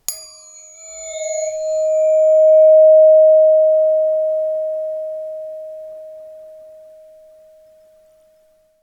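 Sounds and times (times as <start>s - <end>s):
mid range katana blade ring with short decay: 0.0s - 4.4s.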